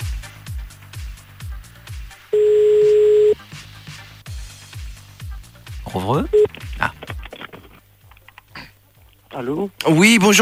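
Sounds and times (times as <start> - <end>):
telephone ringing tone on an outgoing call: 2.4 - 3.4
speech: 6.1 - 6.6, 9.4 - 10.4.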